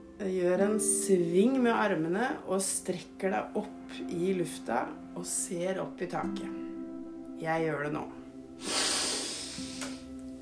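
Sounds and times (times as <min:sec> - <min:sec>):
speech: 0:00.2 - 0:06.6, 0:07.4 - 0:08.7
deep inhale through the nose during a stretching exercise: 0:08.6 - 0:10.1.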